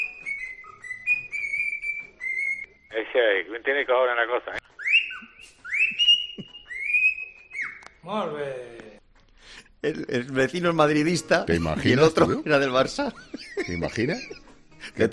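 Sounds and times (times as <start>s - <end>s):
clear high whistling in Silbo Gomero whistled language: 0.0s - 3.0s, 4.8s - 8.0s
speech: 3.0s - 4.6s, 8.0s - 8.8s, 9.8s - 15.1s
laughter: 11.6s - 15.1s.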